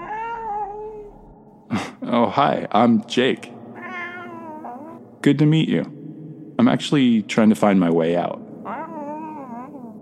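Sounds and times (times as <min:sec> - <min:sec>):
cat meowing: 0:00.0 - 0:01.1, 0:03.8 - 0:05.0, 0:08.7 - 0:10.0
speech: 0:01.7 - 0:03.5, 0:05.2 - 0:06.0, 0:06.6 - 0:08.4.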